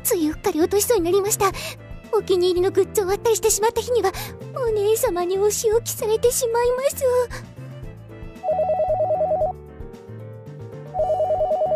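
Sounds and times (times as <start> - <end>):
speech: 0.0 - 7.5
soft music: 0.0 - 11.7
telephone ringing with electronic trills: 8.4 - 9.5, 11.0 - 11.7.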